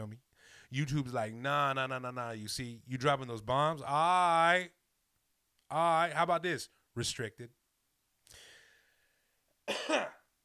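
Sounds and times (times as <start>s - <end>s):
speech: 0.0s - 4.8s, 5.7s - 7.6s, 9.7s - 10.2s
person coughing raspy and harsh: 9.7s - 10.3s.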